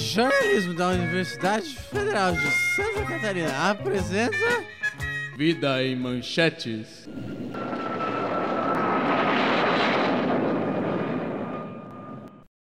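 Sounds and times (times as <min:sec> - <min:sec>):
speech: 0:00.1 - 0:04.8, 0:05.4 - 0:07.3
airplane engine roar with whining tone: 0:07.1 - 0:12.4.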